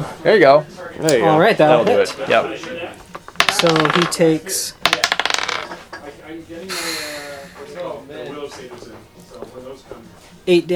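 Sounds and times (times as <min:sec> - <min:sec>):
speech: 0:00.2 - 0:04.8, 0:10.5 - 0:10.7
two six-sided dice rolling on a table: 0:03.1 - 0:06.0.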